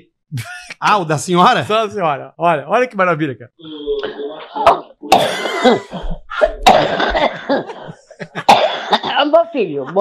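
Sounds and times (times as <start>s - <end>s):
speech: 0.3s - 7.2s, 9.6s - 9.9s
woman coughing in played voice message: 5.1s - 9.4s
laughter: 7.3s - 8.5s.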